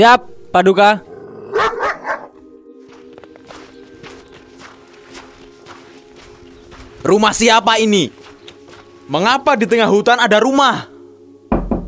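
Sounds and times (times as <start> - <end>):
speech: 0.0 - 1.1, 7.0 - 8.2, 9.1 - 10.9
dog barking in a jungle forest: 1.5 - 2.4
rustling footstep-like sounds: 2.3 - 10.1.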